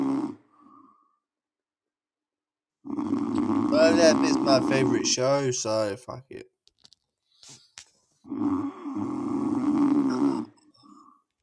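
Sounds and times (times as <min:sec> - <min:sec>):
person snoring loudly: 0:00.0 - 0:00.9, 0:02.9 - 0:05.1, 0:08.2 - 0:10.6
speech: 0:03.9 - 0:06.5, 0:08.3 - 0:08.8.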